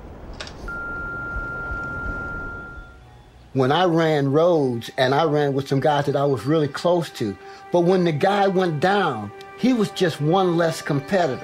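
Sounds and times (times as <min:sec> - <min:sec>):
low rumbling hiss: 0:00.0 - 0:11.1
steady voicemail-style beep tone: 0:00.7 - 0:03.0
speech: 0:03.6 - 0:11.4.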